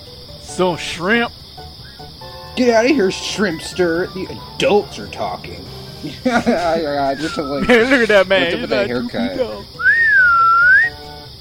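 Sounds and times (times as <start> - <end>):
low music: 0.0 - 11.3
speech: 0.6 - 1.4, 2.6 - 9.8
laughter: 2.9 - 9.9
child whistling one sustained note: 7.1 - 7.6, 9.8 - 11.0.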